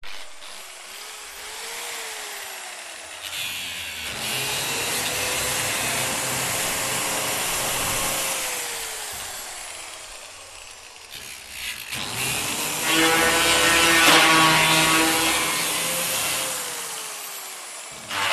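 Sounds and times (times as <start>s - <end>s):
industrial angle grinder medium bursts: 0.1s - 18.3s.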